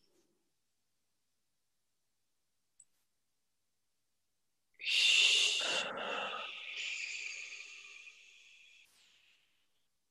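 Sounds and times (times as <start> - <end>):
deep breath in: 4.8 - 9.7.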